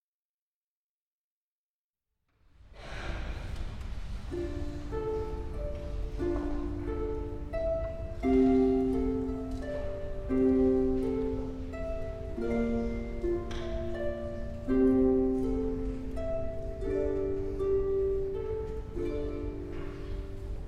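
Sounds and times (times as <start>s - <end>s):
harp solo: 4.3s - 20.6s.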